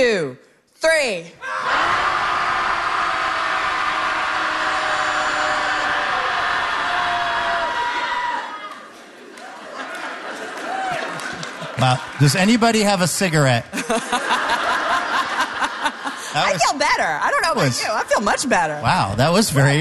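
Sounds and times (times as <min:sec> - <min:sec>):
speech: 0:00.0 - 0:01.8, 0:11.8 - 0:14.6, 0:16.4 - 0:19.7
group of people shouting together on a count of three: 0:01.4 - 0:08.7
laughter: 0:08.9 - 0:12.8, 0:13.6 - 0:16.8.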